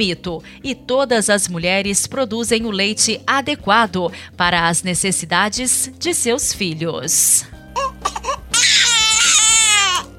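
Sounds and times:
speech: 0:00.0 - 0:07.6
baby crying: 0:07.8 - 0:10.1.

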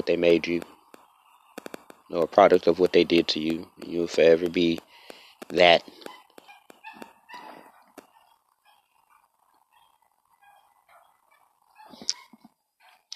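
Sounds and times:
speech: 0:00.1 - 0:00.7, 0:02.1 - 0:06.1
small dogs yapping outside: 0:06.0 - 0:13.0.

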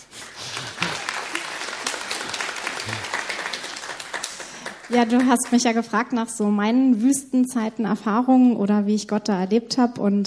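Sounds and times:
audience applauding: 0:00.1 - 0:05.9
speech: 0:04.9 - 0:10.2.

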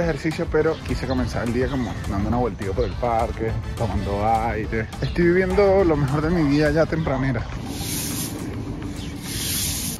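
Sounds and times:
speech: 0:00.0 - 0:08.0
brooms sweeping leaves: 0:07.4 - 0:09.9.

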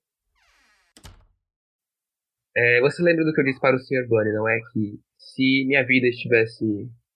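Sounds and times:
door creaking shut: 0:00.3 - 0:01.4
door thud: 0:00.9 - 0:01.4
speech: 0:02.6 - 0:07.0.

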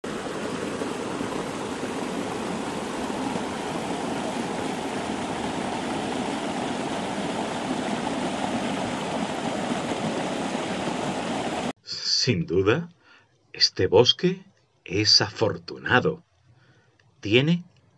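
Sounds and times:
river water rushing: 0:00.0 - 0:11.7
speech: 0:12.2 - 0:13.0, 0:13.6 - 0:16.3, 0:17.2 - 0:17.7.

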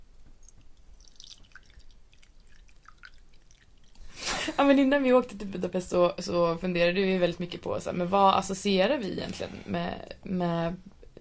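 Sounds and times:
coffee being poured into a cup: 0:01.0 - 0:04.0
speech: 0:04.5 - 0:11.1.

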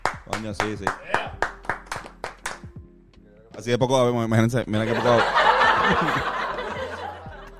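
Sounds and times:
hand clapping welcoming a guest: 0:00.0 - 0:03.2
speech: 0:00.3 - 0:01.4, 0:03.6 - 0:06.4
laughter: 0:04.8 - 0:07.5.

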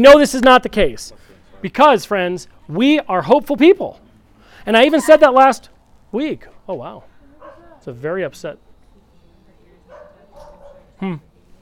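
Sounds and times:
speech: 0:00.0 - 0:04.0, 0:04.6 - 0:07.1, 0:07.8 - 0:08.6, 0:11.0 - 0:11.3
faint low murmur of voices: 0:00.0 - 0:11.5
dog barking: 0:07.4 - 0:07.8, 0:09.9 - 0:11.0.

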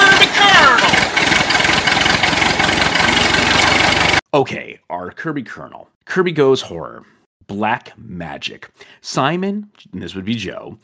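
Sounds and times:
tractor engine cranking, catching and idling with a low chug: 0:00.0 - 0:04.2
speech: 0:04.4 - 0:10.8.

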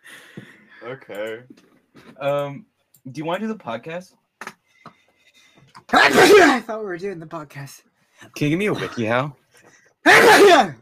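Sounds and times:
speech: 0:00.8 - 0:04.2, 0:06.0 - 0:10.7
person sneezing: 0:05.9 - 0:06.6, 0:10.1 - 0:10.7.

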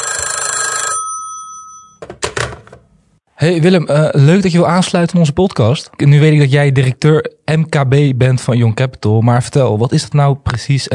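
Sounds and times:
telephone bell ringing for an incoming call: 0:00.0 - 0:02.0
speech: 0:03.4 - 0:10.9.

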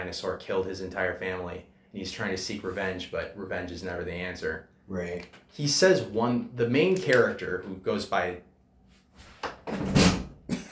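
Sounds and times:
speech: 0:00.0 - 0:08.5
door banging and rattling: 0:09.6 - 0:10.4.

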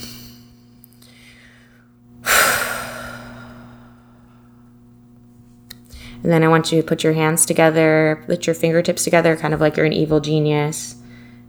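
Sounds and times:
deep breath: 0:01.0 - 0:04.7
speech: 0:06.2 - 0:11.0.

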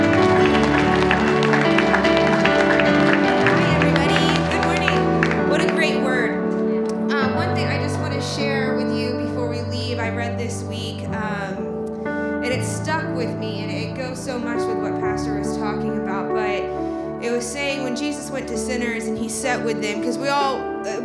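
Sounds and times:
audience clapping and cheering in praise: 0:00.0 - 0:07.9
loud sustained organ or keyboard music: 0:00.0 - 0:21.0.

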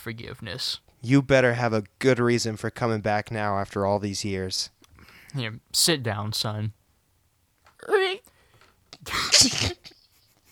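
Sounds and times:
speech: 0:00.0 - 0:06.8, 0:09.0 - 0:09.8
person sneezing with a voiced intake breath: 0:09.0 - 0:10.0.

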